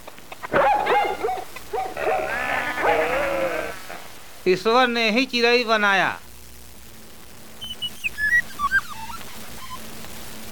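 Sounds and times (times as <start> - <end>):
dog barking: 0.5 - 3.3
wavering bleat-like cries: 1.9 - 4.1
speech: 4.4 - 6.2.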